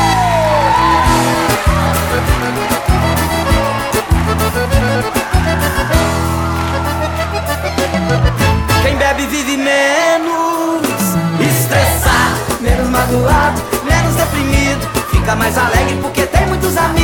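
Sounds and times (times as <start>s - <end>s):
loud crowd of drinkers whooping and shouting: 0.0s - 17.0s
thumping music beat: 1.1s - 6.2s, 10.8s - 17.0s.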